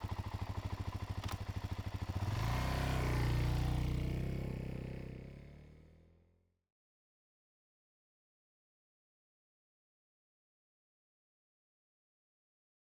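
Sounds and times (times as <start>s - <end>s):
2009 Suzuki DRZ-400 motorcycle riding slowly: 0.0s - 5.9s.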